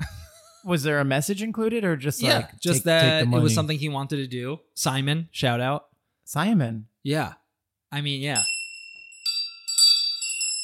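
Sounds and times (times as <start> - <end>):
speech: 0.7 - 8.5
small bell ringing: 8.4 - 10.6.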